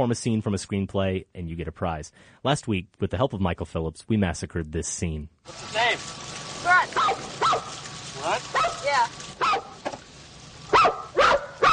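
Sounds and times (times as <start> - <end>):
speech: 0.0 - 6.3
dog giving short high barks and yips: 6.8 - 9.9, 10.7 - 11.7.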